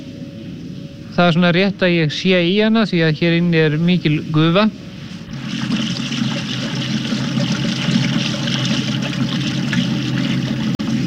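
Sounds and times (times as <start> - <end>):
speech: 1.2 - 4.8
modern washing machine churning in a steamy hot-spring wash house: 5.1 - 11.0
running water in a steamy hot-spring wash house: 5.2 - 11.0.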